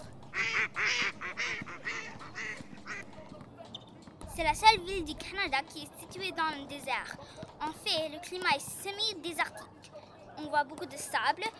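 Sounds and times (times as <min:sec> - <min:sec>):
faint outdoor background: 0:00.0 - 0:11.5
ducks quacking loud and raspy: 0:00.3 - 0:03.2
speech: 0:04.4 - 0:09.8, 0:10.4 - 0:11.5.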